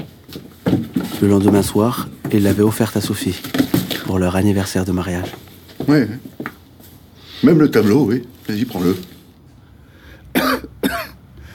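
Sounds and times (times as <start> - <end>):
faint hum of room noise: 0.0 - 11.5
speech: 0.3 - 6.3, 7.4 - 9.1
harsh forceful raspy coughs: 10.3 - 11.2.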